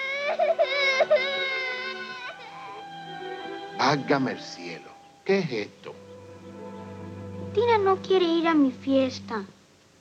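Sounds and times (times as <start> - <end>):
child crying: 0.0 - 3.5
speech: 3.8 - 6.0, 7.6 - 9.6.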